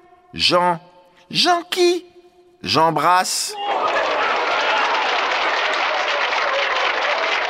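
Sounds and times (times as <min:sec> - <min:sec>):
speech: 0:00.3 - 0:04.2
sustained applause from an audience: 0:03.6 - 0:07.4.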